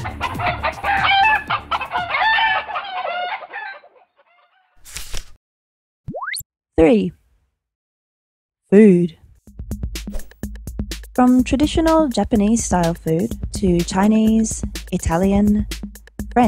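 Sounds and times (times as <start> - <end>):
brief rooster-like crow: 0.0 - 4.8
chickens clucking and squawking: 0.0 - 4.8
speech: 6.8 - 7.2, 8.7 - 9.2, 11.2 - 16.4.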